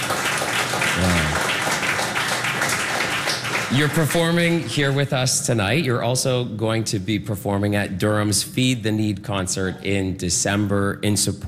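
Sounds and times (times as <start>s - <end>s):
audience applauding a musician: 0.0s - 5.2s
speech: 3.7s - 11.4s.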